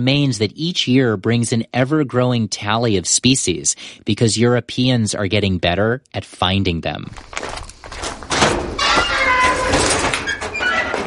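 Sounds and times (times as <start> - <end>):
speech: 0.0 - 8.0
garage door metal hinges squealing in Conte, southeast France: 7.4 - 11.0
garage door rumbling scrape in Conte, southeast France: 7.4 - 11.0.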